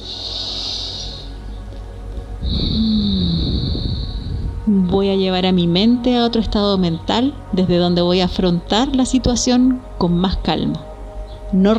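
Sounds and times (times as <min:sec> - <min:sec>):
slow airy inhale: 0:00.0 - 0:01.5, 0:02.4 - 0:04.6
speech: 0:04.7 - 0:10.9, 0:11.5 - 0:11.7.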